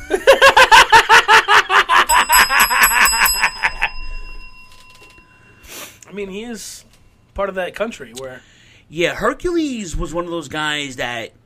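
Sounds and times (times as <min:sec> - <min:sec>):
laughter: 0:00.0 - 0:04.1
bell ringing loudly and rapidly: 0:02.1 - 0:05.8
speech: 0:06.2 - 0:11.4.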